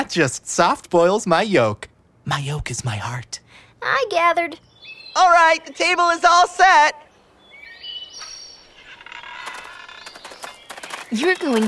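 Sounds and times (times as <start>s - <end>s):
speech: 0.0s - 7.0s, 11.1s - 11.6s
several birds chirping and tweeting: 2.3s - 11.6s.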